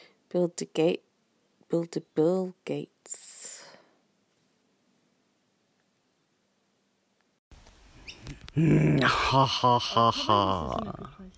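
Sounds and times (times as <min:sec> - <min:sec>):
steady outdoor noise: 0:00.0 - 0:11.3
speech: 0:00.3 - 0:01.1, 0:01.7 - 0:03.3, 0:08.6 - 0:11.3
high-pitched bird chirps from trees overhead: 0:08.0 - 0:09.4
laughter: 0:08.7 - 0:11.1.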